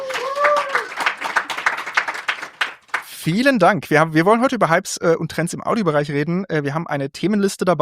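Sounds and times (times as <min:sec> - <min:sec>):
person whooping or cheering: 0:00.0 - 0:02.2
live audience applause at an innovation festival: 0:00.0 - 0:03.1
speech: 0:03.2 - 0:07.8.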